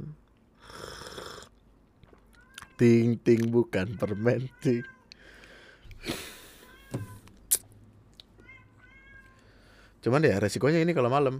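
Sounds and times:
speech: 2.8s - 5.0s, 10.0s - 11.3s
cat in heat yowling outdoors: 3.9s - 5.1s, 8.4s - 9.4s.

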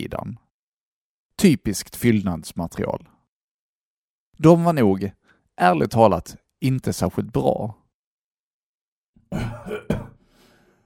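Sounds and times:
speech: 0.0s - 0.4s, 1.4s - 3.1s, 4.4s - 7.8s, 9.3s - 9.9s
man coughing: 9.3s - 10.2s
man's rough breath: 10.2s - 10.8s.

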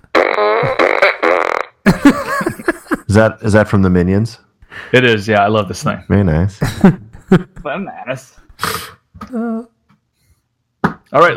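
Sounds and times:
loud buzzy raspy fart noises: 0.0s - 1.9s
speech: 3.2s - 9.7s, 11.1s - 11.3s.

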